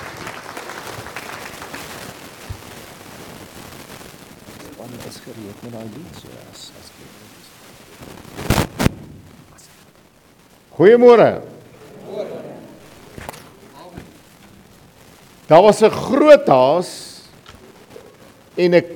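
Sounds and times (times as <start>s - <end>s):
audience clapping for a pastor: 0.0s - 2.7s
speech: 5.0s - 7.2s, 10.8s - 11.5s, 15.5s - 17.1s, 18.6s - 18.9s
murmur of a few voices: 11.2s - 14.7s.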